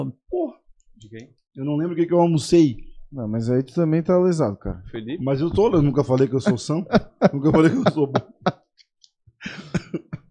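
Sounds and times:
speech: 0.0s - 0.2s, 1.0s - 8.6s
laughter: 5.6s - 8.6s
person coughing: 9.5s - 10.3s.

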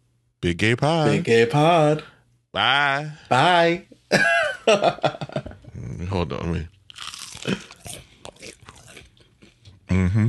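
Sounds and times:
speech: 0.4s - 7.8s, 9.9s - 10.2s
crunchy chewing of food: 6.9s - 9.8s.

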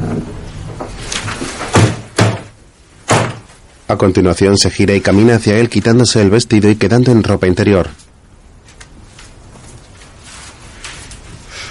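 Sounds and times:
wooden bedroom door being closed: 0.0s - 3.6s
speech: 3.9s - 8.0s.

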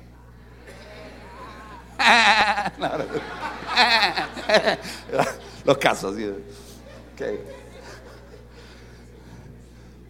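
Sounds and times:
laughter: 0.5s - 9.3s
people imitating sheep and goat bleats: 0.7s - 3.1s
speech: 2.1s - 7.6s.

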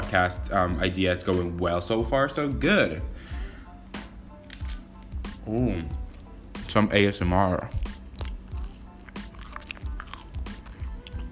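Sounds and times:
speech: 0.1s - 3.4s, 5.5s - 6.0s, 6.7s - 7.8s
moist chewing on French toast: 7.7s - 11.3s.

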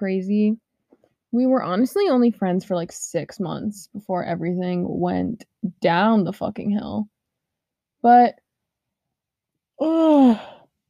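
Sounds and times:
speech: 0.0s - 0.6s, 1.3s - 7.2s, 8.0s - 8.4s, 9.8s - 10.6s
drawn-out human yawn: 9.8s - 10.6s.

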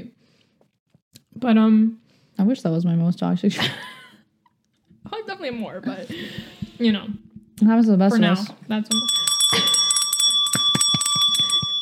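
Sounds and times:
speech: 1.4s - 3.9s, 5.4s - 9.6s
small handheld bell ringing: 8.9s - 11.7s.

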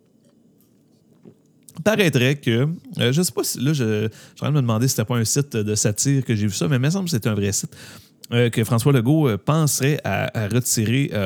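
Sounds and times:
person sipping a drink: 1.1s - 1.8s
speech: 1.2s - 11.2s.

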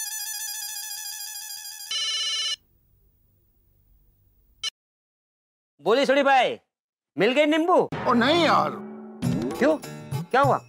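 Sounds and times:
electronic telephone ring on an outgoing call: 0.0s - 2.6s
speech: 5.8s - 8.8s, 9.6s - 10.6s.

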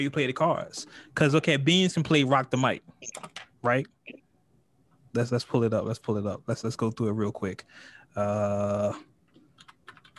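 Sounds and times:
speech: 0.0s - 4.2s, 5.2s - 9.1s
light tapping on a computer keyboard: 9.3s - 10.1s.

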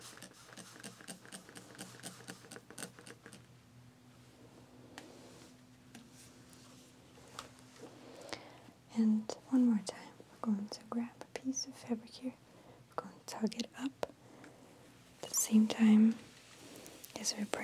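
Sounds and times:
spray bottle misting water onto a shirt being ironed: 0.0s - 3.2s
low steady hum: 0.0s - 17.6s
speech: 9.0s - 12.4s, 13.3s - 14.0s, 15.5s - 16.3s, 17.2s - 17.6s.

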